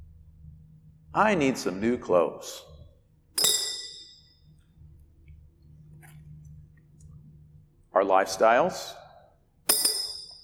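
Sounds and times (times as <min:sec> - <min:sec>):
low hum: 0:00.0 - 0:10.4
speech: 0:01.2 - 0:02.7, 0:08.0 - 0:09.0
rock dropped into a glass jar holding rocks: 0:03.4 - 0:04.4, 0:09.7 - 0:10.4.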